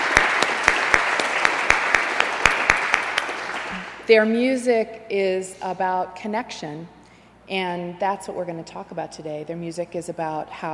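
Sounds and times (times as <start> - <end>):
audience applauding for musicians: 0.0 - 4.0
sharp evenly spaced claps: 0.0 - 4.0
speech: 4.1 - 10.7.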